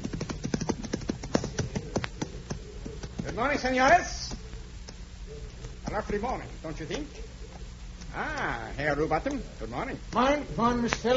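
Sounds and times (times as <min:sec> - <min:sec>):
horse hooves clip-clopping as a rider arrives at a tavern: 0:00.0 - 0:04.4
speech: 0:03.4 - 0:04.3, 0:05.9 - 0:07.3, 0:08.2 - 0:11.1.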